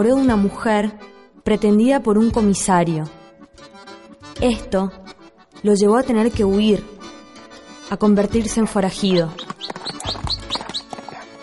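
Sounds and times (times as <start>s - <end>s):
speech: 0.0s - 3.7s, 4.4s - 5.0s, 5.6s - 6.9s, 7.9s - 9.4s
small birds chirping: 8.1s - 11.4s
horse hooves clip-clopping: 9.0s - 11.4s.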